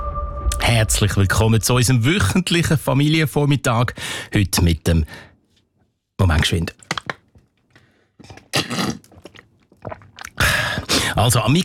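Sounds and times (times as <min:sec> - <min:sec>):
speech: 0:00.7 - 0:05.3, 0:06.2 - 0:06.8, 0:11.2 - 0:11.6
person slurping and swallowing a drink: 0:06.4 - 0:11.6.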